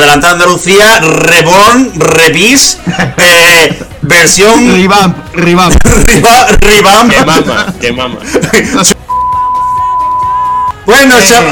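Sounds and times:
speech: 0.1s - 9.0s, 10.9s - 11.5s
laughter: 2.8s - 4.0s, 5.7s - 9.0s
steady loud electronic censorship beep: 9.0s - 10.9s.

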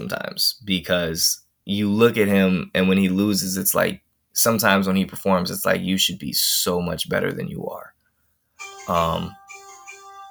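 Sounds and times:
speech: 0.0s - 7.9s, 8.8s - 9.4s
phone notification chime: 8.6s - 10.2s
brief voice: 8.9s - 9.4s.

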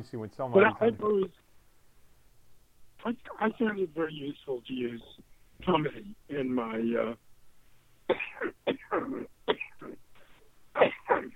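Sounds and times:
speech: 0.0s - 1.5s, 3.0s - 7.2s, 8.1s - 10.0s
dry hacking coughs: 8.1s - 10.0s, 10.8s - 11.3s
throat clearing: 8.1s - 10.0s, 10.8s - 11.3s.

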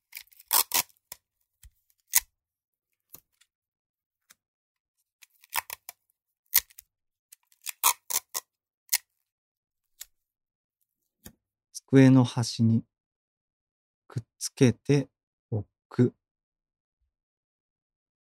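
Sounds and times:
tape being pulled off a roll and torn: 0.1s - 1.2s, 5.4s - 5.9s, 7.6s - 9.0s
speech: 11.9s - 12.9s, 14.1s - 16.2s.

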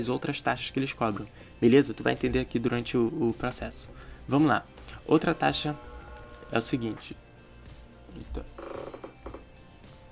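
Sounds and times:
speech: 0.0s - 5.9s, 6.5s - 7.2s, 8.2s - 8.5s
electric fan creaking and ratcheting as it is moved: 5.0s - 7.2s, 8.3s - 9.5s.

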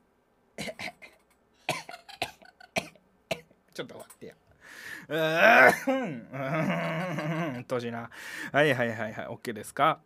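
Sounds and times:
person coughing: 0.6s - 3.5s, 5.3s - 6.6s
speech: 3.8s - 10.0s.

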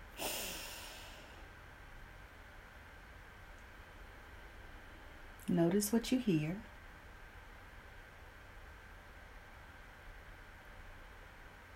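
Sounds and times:
deep breath drawn in through the nose during a mindfulness exercise: 0.1s - 1.5s
speech: 5.5s - 6.7s.

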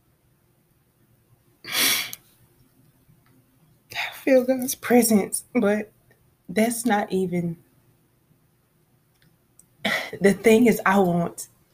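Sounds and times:
person sniffling while tearful: 1.7s - 2.2s, 9.9s - 10.2s
speech: 4.2s - 7.6s, 10.2s - 11.5s.

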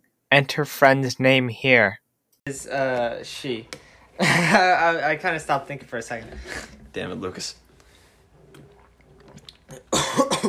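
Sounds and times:
speech: 0.3s - 7.6s
person coughing after accidentally inhaling a sports drink: 9.7s - 10.4s.

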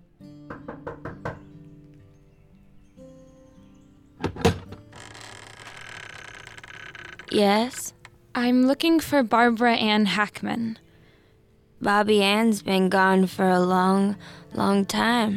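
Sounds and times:
firm knocking on a door: 0.5s - 1.5s
heavy thuds of a door opening: 4.2s - 5.8s
speech: 7.3s - 7.8s, 8.4s - 10.8s, 11.8s - 15.3s.

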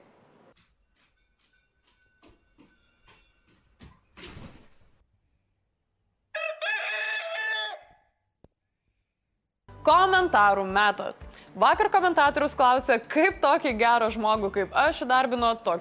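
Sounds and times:
rooster crowing: 6.3s - 8.2s
speech: 9.8s - 15.7s.

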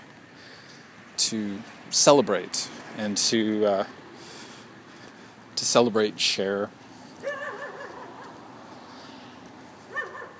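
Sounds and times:
speech: 1.3s - 4.0s, 5.6s - 6.8s
dog giving short whiny yips: 7.2s - 8.4s, 9.9s - 10.3s.

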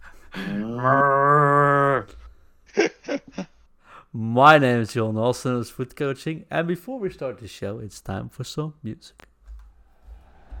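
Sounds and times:
man imitating a cow with low mooing call: 0.5s - 2.1s
speech: 4.4s - 9.3s.

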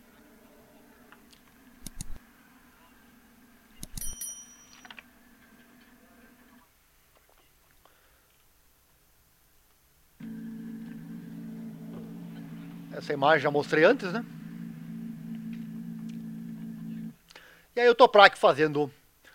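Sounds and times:
sharp clicks: 1.8s - 2.2s, 3.8s - 4.2s
low engine drone: 10.2s - 17.2s
speech: 13.0s - 14.4s, 17.8s - 19.0s.

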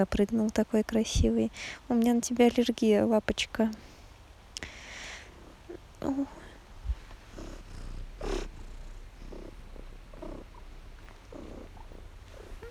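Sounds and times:
speech: 0.0s - 3.9s, 6.0s - 6.4s
cat purring in a low rumbling rhythm: 5.1s - 12.6s.

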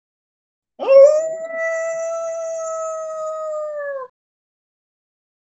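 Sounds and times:
single long steady howl: 0.8s - 4.1s.

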